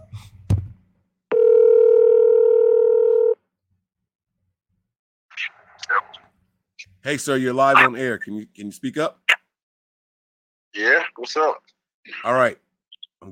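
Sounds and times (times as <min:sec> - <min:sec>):
ringback tone of an outgoing phone call: 0:01.3 - 0:03.4
speech: 0:07.1 - 0:09.2, 0:10.8 - 0:12.6, 0:13.2 - 0:13.3.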